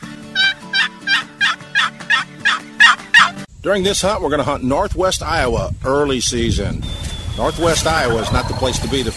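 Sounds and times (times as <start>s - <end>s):
one-piece box call turkey hen yelps: 0.3s - 3.4s
speech: 3.6s - 9.1s.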